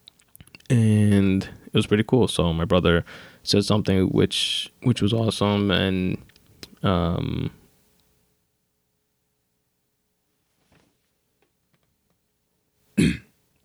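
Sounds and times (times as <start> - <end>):
speech: 1.4 - 7.6
cough: 13.0 - 13.3
person clearing throat: 13.0 - 13.3.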